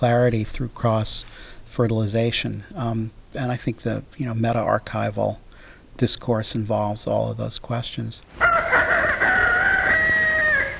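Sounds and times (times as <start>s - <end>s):
speech: 0.0s - 5.4s, 6.0s - 8.4s
rooster crowing: 8.4s - 10.7s.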